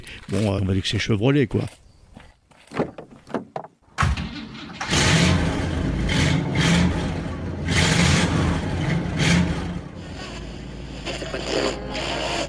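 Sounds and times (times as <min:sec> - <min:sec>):
speech: 0:00.2 - 0:01.8
sharp clunks: 0:02.5 - 0:04.8
big car engine starting, revving and driving off: 0:04.2 - 0:12.4.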